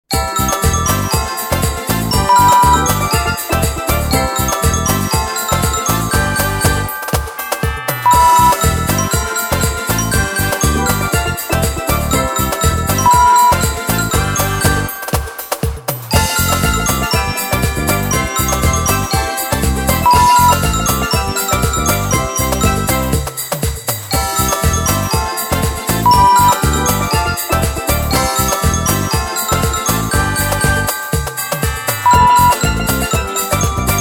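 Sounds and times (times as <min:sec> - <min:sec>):
Christmas calypso music: 0:00.0 - 0:33.9.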